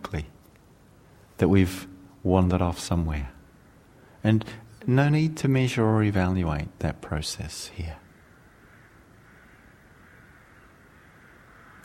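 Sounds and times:
faint birds calling outdoors: 0:00.0 - 0:11.8
speech: 0:01.4 - 0:03.4, 0:04.2 - 0:08.0.

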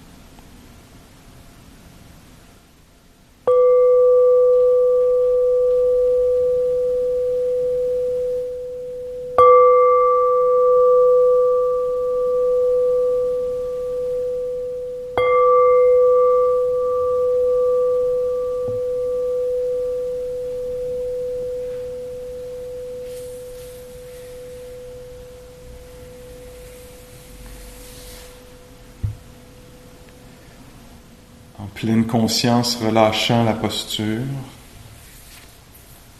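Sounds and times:
meditation singing bowl struck and ringing: 0:03.4 - 0:30.6
speech: 0:31.8 - 0:34.6.

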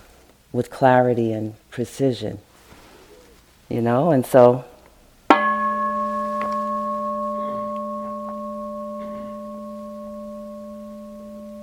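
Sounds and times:
speech: 0:00.5 - 0:02.5, 0:03.7 - 0:04.7
meditation bell struck and reverberating: 0:05.3 - 0:11.6.

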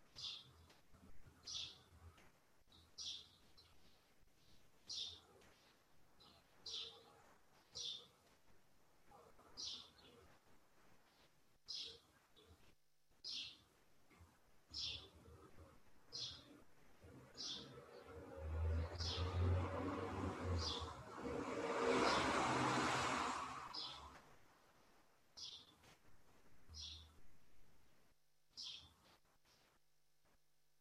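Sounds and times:
bird chirping outdoors: 0:00.0 - 0:08.4, 0:09.1 - 0:10.4, 0:11.0 - 0:21.0, 0:23.7 - 0:24.2, 0:25.4 - 0:26.0, 0:26.6 - 0:27.2, 0:28.5 - 0:29.7
vehicle rumbling past: 0:17.1 - 0:24.2.

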